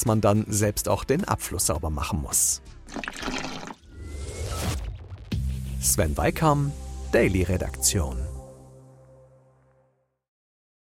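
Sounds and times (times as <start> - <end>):
speech: 0.0 - 3.4, 5.8 - 8.3
water running into a bathtub: 2.9 - 3.8.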